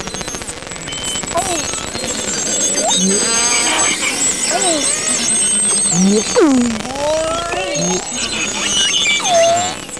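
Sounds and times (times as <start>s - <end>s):
beluga whale calling: 2.8s - 9.8s.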